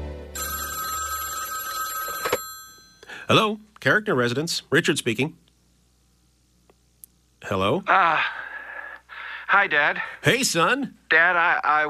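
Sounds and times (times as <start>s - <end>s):
telephone bell ringing: 0.4s - 3.0s
speech: 3.3s - 5.4s, 7.5s - 8.4s, 9.5s - 11.8s.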